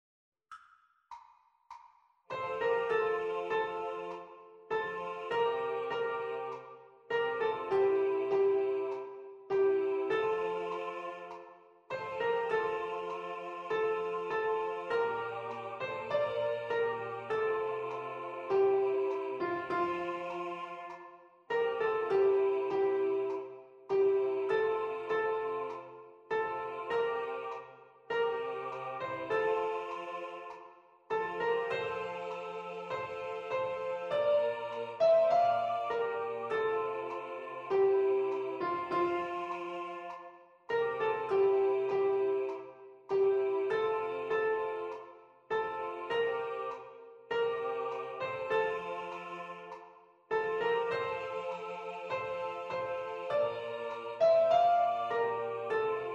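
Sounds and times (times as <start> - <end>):
piano: 2.3 - 56.1
soprano singing: 2.4 - 56.1.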